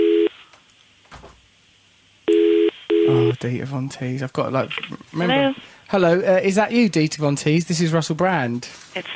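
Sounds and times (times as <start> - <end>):
telephone ringing tone on the line: 0.0 - 0.4, 2.3 - 3.4
faint noise: 0.0 - 9.1
speech: 3.1 - 9.1.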